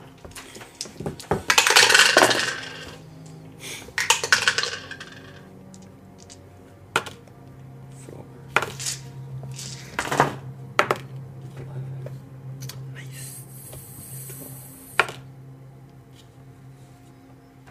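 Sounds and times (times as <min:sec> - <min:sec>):
dice clattering and tumbling across a hard tabletop: 0:00.8 - 0:03.0, 0:04.0 - 0:06.4, 0:08.6 - 0:10.3.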